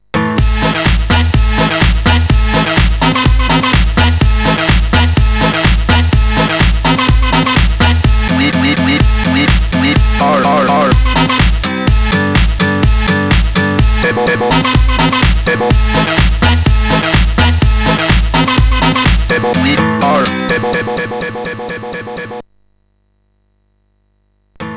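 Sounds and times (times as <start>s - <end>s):
tune on a MOS6581R4 sound chip: 0.2s - 22.4s.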